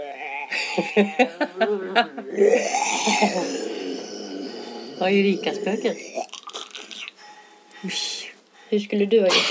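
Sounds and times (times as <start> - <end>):
laughter: 0.2 - 3.6
speech: 0.8 - 3.8, 5.0 - 6.3, 7.8 - 9.4
drawn-out gravelly burp: 2.2 - 7.2.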